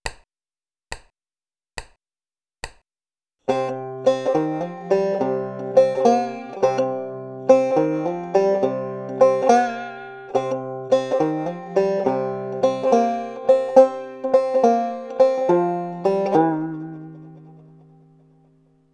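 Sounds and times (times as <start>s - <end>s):
blues lick in double C tuning: 3.5s - 18.2s.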